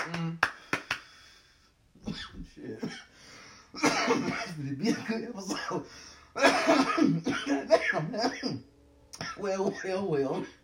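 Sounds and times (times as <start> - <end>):
hands clapping: 0.0 - 1.2
speech: 4.6 - 8.7, 9.4 - 10.6.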